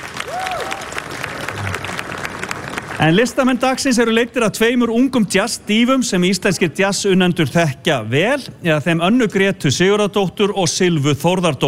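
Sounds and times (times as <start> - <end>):
audience applause at a summer jazz event: 0.0 - 3.6
speech: 3.0 - 11.6.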